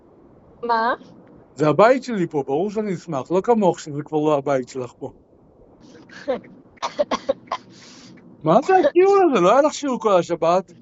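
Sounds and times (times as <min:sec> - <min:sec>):
speech: 0:00.6 - 0:05.2, 0:05.8 - 0:07.2, 0:08.4 - 0:10.8
woman coughing: 0:06.1 - 0:07.8.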